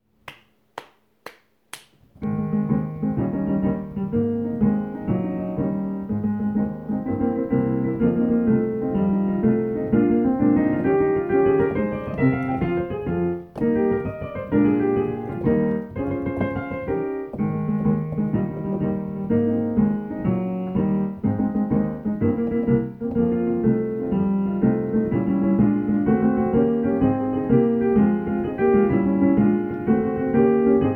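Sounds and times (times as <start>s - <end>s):
tenor accompaniment: 2.2s - 30.9s.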